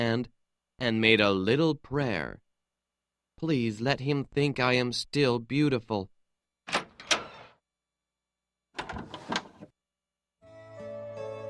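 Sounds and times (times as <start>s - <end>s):
speech: 0.0s - 2.4s, 3.4s - 6.1s
door handle rattling: 6.7s - 7.4s, 8.8s - 9.7s.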